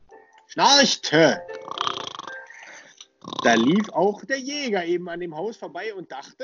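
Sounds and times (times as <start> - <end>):
speech: 0.5 - 1.5, 3.4 - 6.4
person imitating snoring: 1.7 - 3.9.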